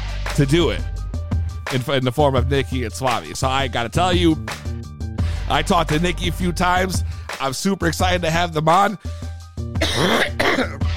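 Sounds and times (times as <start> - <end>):
speech: 0.4 - 0.9, 1.7 - 4.6, 5.5 - 9.2, 10.0 - 10.8
person coughing hard and raspy: 9.8 - 10.9.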